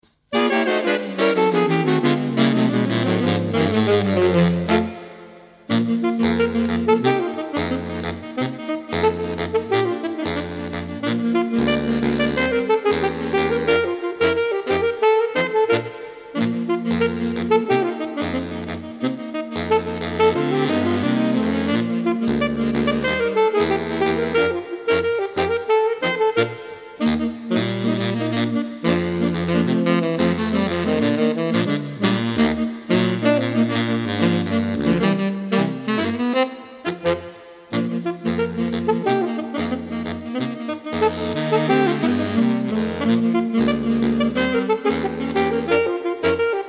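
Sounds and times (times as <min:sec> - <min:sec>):
saxophone quartet playing: 0:00.3 - 0:46.6.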